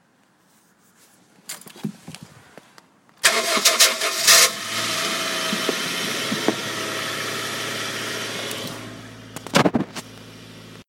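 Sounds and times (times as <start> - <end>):
starter motor: 3.2 - 9.6.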